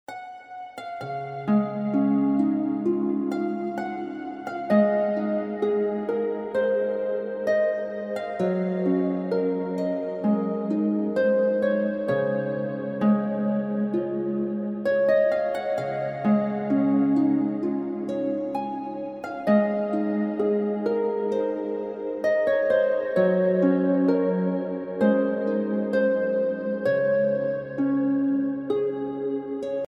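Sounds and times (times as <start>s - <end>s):
happy relaxing harp music: 0.1s - 29.8s.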